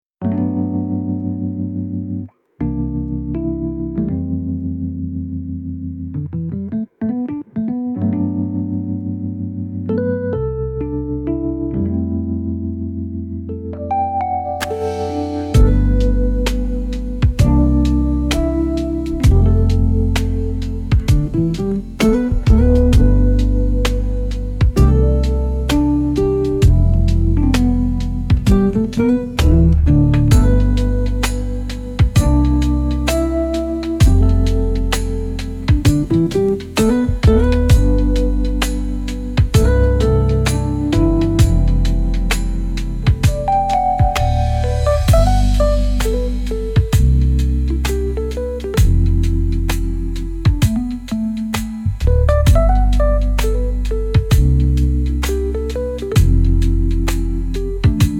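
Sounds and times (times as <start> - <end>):
chill lofi jazz music: 0.2 - 58.1.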